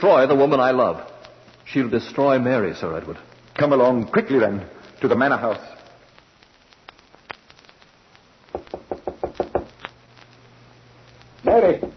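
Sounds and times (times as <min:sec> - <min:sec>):
speech: 0:00.0 - 0:01.1, 0:01.7 - 0:05.8, 0:11.6 - 0:11.9
knocking on a door at a manor house: 0:08.5 - 0:09.7.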